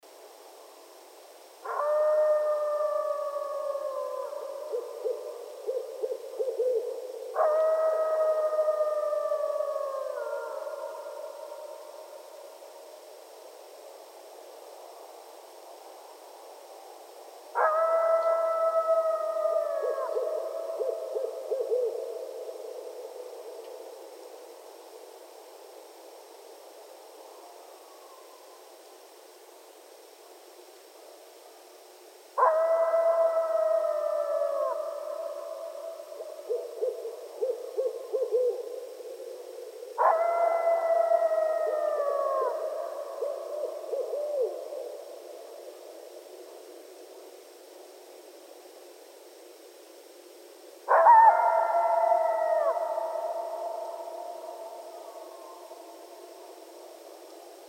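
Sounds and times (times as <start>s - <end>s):
Canis latrans coyotes at night: 1.6s - 12.3s, 17.5s - 24.8s, 32.4s - 48.1s, 50.9s - 57.6s.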